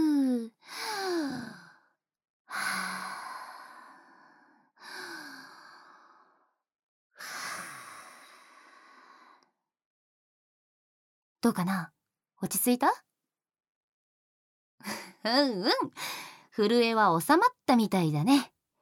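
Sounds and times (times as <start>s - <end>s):
deep breathing in and out to calm down before an ear cleaning: 2.5s - 6.6s, 7.2s - 9.6s
speech: 11.4s - 13.1s, 14.8s - 18.5s.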